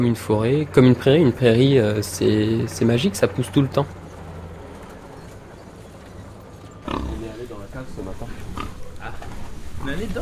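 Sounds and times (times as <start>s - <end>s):
speech: 0.0s - 4.0s
steady noise: 0.0s - 10.2s
pigs grunting and snorting on a pig farm: 6.7s - 9.4s.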